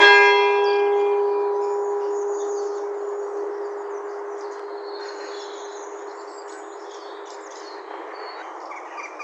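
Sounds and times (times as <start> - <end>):
bells: 0.0 - 8.6.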